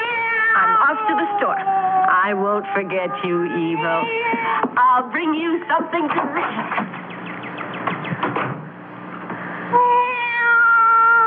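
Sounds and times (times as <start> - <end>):
cat meowing: 0.0 - 4.6, 9.8 - 11.2
speech: 0.6 - 7.0.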